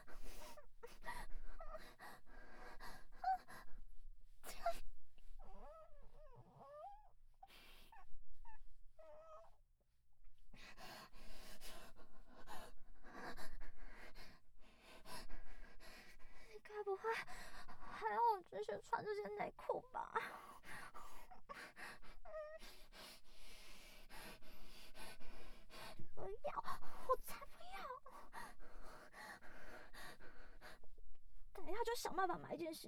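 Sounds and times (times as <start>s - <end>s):
heavy ragged panting breaths: 0.0s - 3.9s, 10.5s - 18.4s, 20.1s - 31.5s
speech: 19.0s - 19.6s, 32.2s - 32.8s.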